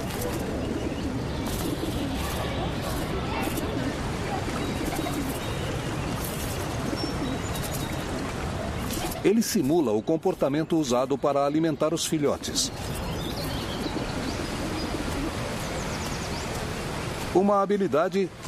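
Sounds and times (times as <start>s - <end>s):
pigeons cooing during courtship: 0.0s - 9.3s, 12.3s - 17.0s
speech: 9.2s - 13.0s, 17.3s - 18.4s.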